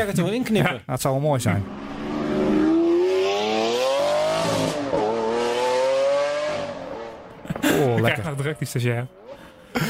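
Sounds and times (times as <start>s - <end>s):
speech: 0.0s - 1.8s, 8.0s - 9.8s
Lamborghini sports car engine revving hard: 1.4s - 7.6s
laughter: 7.4s - 8.3s.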